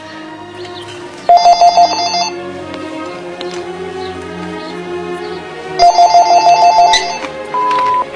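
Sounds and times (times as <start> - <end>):
telephone ringing with rapid trilling bell tones: 1.3 - 2.4, 5.8 - 8.0.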